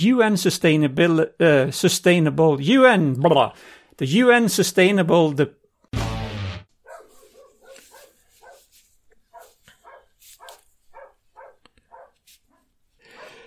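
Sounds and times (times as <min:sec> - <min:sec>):
speech: 0:00.0 - 0:05.6
dog barking: 0:06.8 - 0:08.7, 0:09.3 - 0:13.4.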